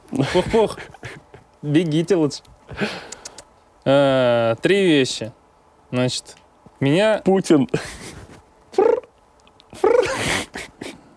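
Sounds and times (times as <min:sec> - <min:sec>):
speech: 0:00.2 - 0:01.0, 0:01.6 - 0:03.1, 0:03.8 - 0:08.1
human voice imitating grasshoppers with purring trilled bursts: 0:08.7 - 0:11.0.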